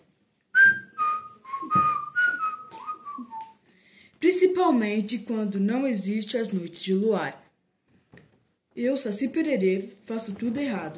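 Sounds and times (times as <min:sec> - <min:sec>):
person whistling a short tune: 0:00.5 - 0:03.6
speech: 0:04.6 - 0:07.4, 0:08.8 - 0:10.9.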